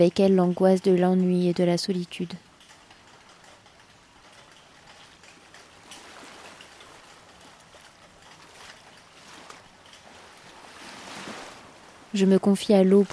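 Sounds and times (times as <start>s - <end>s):
speech: 0.0s - 2.5s, 12.2s - 13.1s
ocean waves surging: 5.7s - 13.1s.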